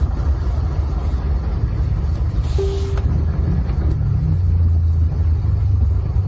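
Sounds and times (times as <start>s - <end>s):
vehicle engine rumble and idling drone at a pier area: 0.0s - 6.2s
brief faint tone: 2.5s - 3.0s.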